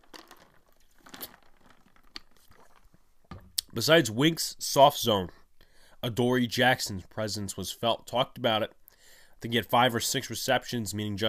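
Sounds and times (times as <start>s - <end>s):
sharp little clicks and crunches: 0.0s - 2.4s
soft crinkling: 0.0s - 3.6s
quick sip from a drink: 1.0s - 2.9s
speech: 3.8s - 5.4s, 6.0s - 8.8s, 9.4s - 11.2s.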